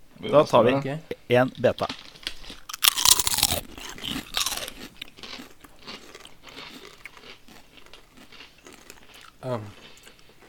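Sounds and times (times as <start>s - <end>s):
speech: 0.2s - 2.0s, 9.4s - 9.8s
chewing crisp potato chips: 1.8s - 10.4s.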